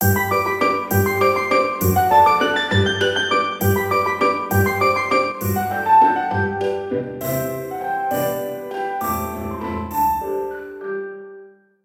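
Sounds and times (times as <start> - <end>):
waltz ringtone on a mobile phone: 0.0 - 11.2.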